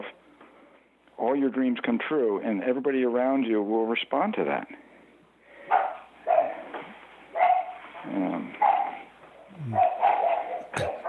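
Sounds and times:
speech: 1.2s - 4.8s
several dogs barking at someone at the front door: 5.7s - 6.7s, 7.4s - 7.8s, 8.6s - 11.0s.

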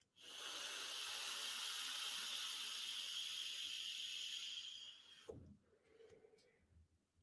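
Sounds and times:
direct-lung inhale through an e-cigarette vape: 0.1s - 5.3s.

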